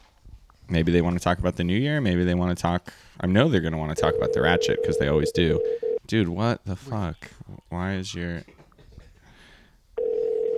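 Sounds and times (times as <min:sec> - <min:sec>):
speech: 0:00.7 - 0:08.6
telephone ringing with a loud steady electronic tone: 0:04.0 - 0:06.0, 0:10.0 - 0:10.5.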